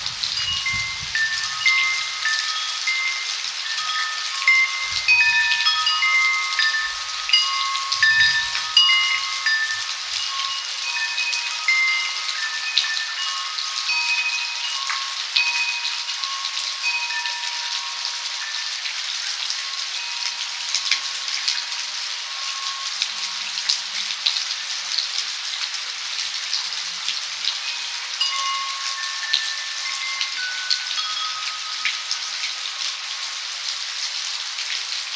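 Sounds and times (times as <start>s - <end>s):
metallic wind chime tones: 0.0s - 35.1s
steady rain in a midnight rainstorm in California: 0.0s - 35.1s
low thumps: 6.9s - 9.8s.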